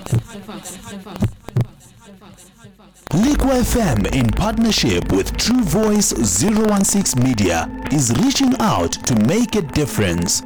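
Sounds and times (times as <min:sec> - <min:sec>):
speech: 0:00.4 - 0:01.4, 0:02.1 - 0:10.4
deep booming heartbeat sound effect in a radio station jingle: 0:03.1 - 0:08.0.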